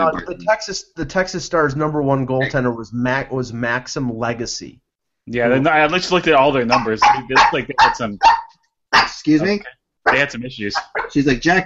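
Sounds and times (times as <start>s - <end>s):
speech: 0.0s - 11.6s
dog barking: 6.7s - 9.2s, 10.1s - 11.2s.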